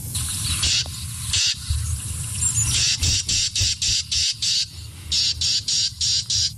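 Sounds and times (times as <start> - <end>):
Carolina wren harsh buzzy agitated call: 0.2 - 6.5.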